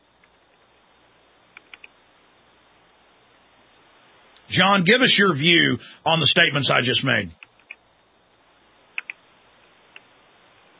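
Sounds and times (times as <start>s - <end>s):
low hiss: 0.0s - 10.7s
keyboard clicks: 1.5s - 1.9s, 9.0s - 9.2s
speech: 4.5s - 7.4s.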